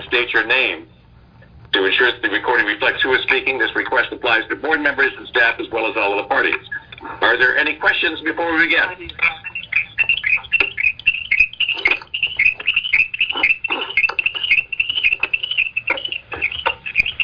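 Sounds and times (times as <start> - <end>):
speech: 0.1 - 1.0, 1.7 - 9.4
chipmunk chirping: 4.6 - 17.2.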